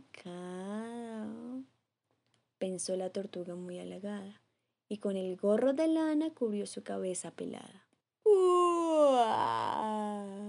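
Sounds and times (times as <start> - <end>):
speech: 0.2 - 0.7, 2.6 - 8.5
person voicing a long sleepy tortoise yawn: 8.3 - 10.4.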